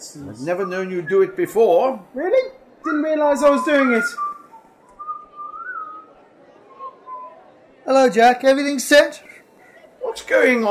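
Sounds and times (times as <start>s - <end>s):
faint murmur: 0.0s - 10.6s
speech: 0.1s - 4.3s, 7.9s - 9.4s, 10.1s - 10.6s
person whistling a soft wandering melody: 3.6s - 5.9s.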